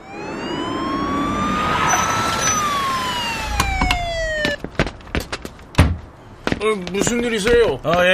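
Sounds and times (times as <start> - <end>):
police car siren wailing at an apartment building: 0.0 - 4.7
speech: 6.7 - 8.1.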